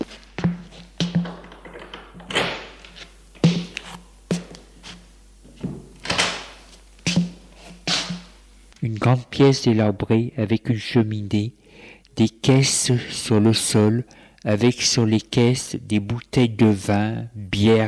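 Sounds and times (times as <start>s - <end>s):
door being opened: 1.0s - 3.7s, 5.6s - 6.6s
speech: 8.8s - 11.6s, 12.2s - 17.8s.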